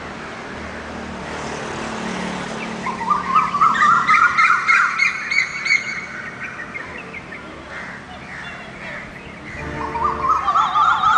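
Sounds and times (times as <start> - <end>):
low background hum that sounds like a vehicle: 0.0 - 11.1
bird song of quick chirping notes in the morning: 2.6 - 11.1.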